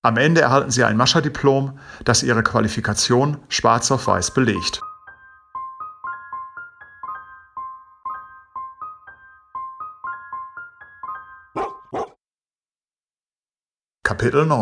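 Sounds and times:
speech: 0.0 - 4.9, 14.2 - 14.6
sled dogs huskies barking: 11.6 - 12.2.

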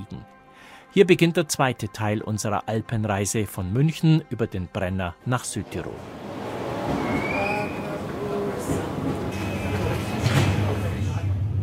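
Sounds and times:
speech: 0.9 - 6.2, 6.9 - 7.3
S-Bahn commuter train wheels and carriage rumbling: 5.6 - 11.6
passengers murmuring faintly in an S-Bahn commuter train: 5.6 - 11.6.

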